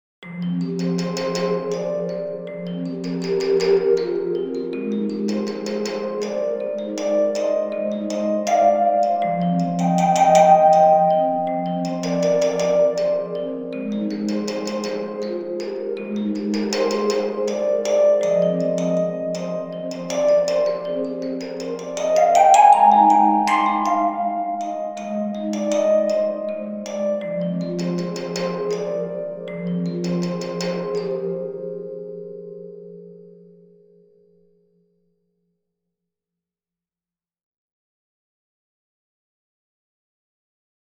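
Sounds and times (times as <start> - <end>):
oil tank music box: 0.3 - 31.5.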